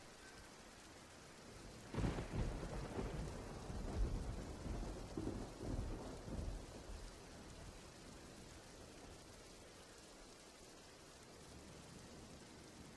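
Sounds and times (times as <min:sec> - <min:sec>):
steady rain hissing: 0:00.0 - 0:12.9
low thunder rumbling and rolling: 0:01.6 - 0:09.6.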